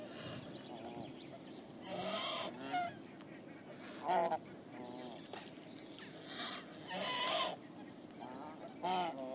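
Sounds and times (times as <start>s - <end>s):
steady hiss of background noise: 0.0s - 9.3s
swan goose nasal honks: 1.8s - 5.0s, 6.3s - 7.6s, 8.2s - 9.3s.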